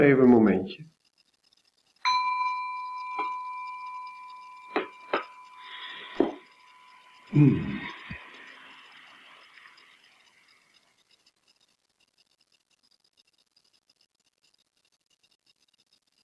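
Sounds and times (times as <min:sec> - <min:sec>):
speech: 0:00.0 - 0:01.0, 0:07.3 - 0:07.9
soft clinks and knocks: 0:00.9 - 0:16.2
small bell struck: 0:02.0 - 0:10.0.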